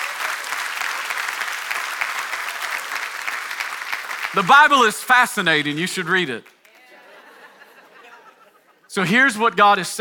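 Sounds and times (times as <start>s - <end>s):
audience applause: 0.0s - 6.8s
speech: 4.3s - 6.5s, 9.0s - 10.0s
laughter: 6.8s - 9.0s.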